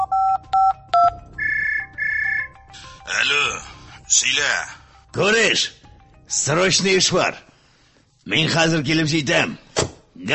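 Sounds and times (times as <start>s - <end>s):
phone keypad tones while a number is dialed: 0.0s - 2.5s
speech: 4.4s - 7.5s, 8.3s - 10.3s.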